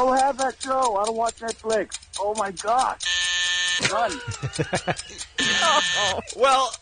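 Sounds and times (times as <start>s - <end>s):
speech: 0.0s - 3.2s, 3.8s - 6.8s
loud flat electronic quiz countdown timer buzzer: 3.0s - 4.0s, 5.4s - 6.2s
laughter: 3.8s - 6.5s.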